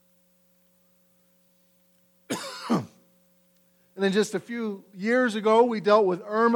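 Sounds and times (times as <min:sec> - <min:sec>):
single raspy cough: 0:02.3 - 0:03.0
speech: 0:04.0 - 0:06.5.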